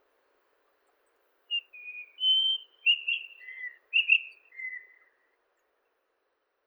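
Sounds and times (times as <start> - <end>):
white-throated rock thrush Monticola gularis song: 1.5 - 5.1.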